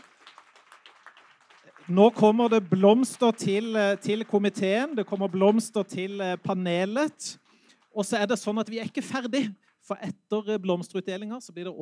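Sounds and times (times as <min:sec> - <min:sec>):
audience applause indoors: 0:00.0 - 0:06.4
speech: 0:01.9 - 0:07.4, 0:08.0 - 0:11.7.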